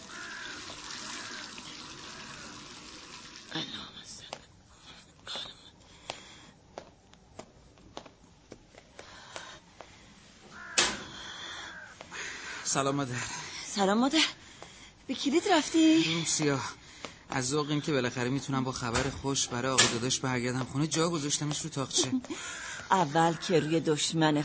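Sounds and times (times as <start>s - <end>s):
hands rinsed under running tap water: 0.0s - 3.6s
speech: 12.7s - 14.4s, 15.1s - 24.4s.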